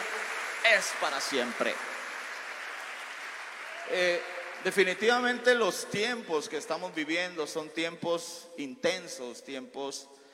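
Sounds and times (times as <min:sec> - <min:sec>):
church audience applauding to close a prayer: 0:00.0 - 0:05.6
speech: 0:00.7 - 0:02.0, 0:03.9 - 0:10.2.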